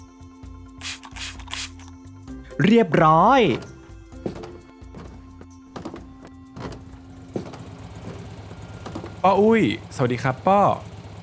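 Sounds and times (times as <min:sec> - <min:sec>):
alcohol disinfectant spray being sprayed for a customer at a shop: 0:00.8 - 0:01.8
speech: 0:02.6 - 0:03.7, 0:09.2 - 0:10.9.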